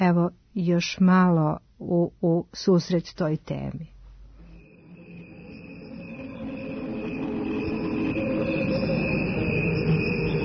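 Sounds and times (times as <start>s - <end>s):
speech: 0.0s - 3.9s
crickets chirping: 4.1s - 10.4s.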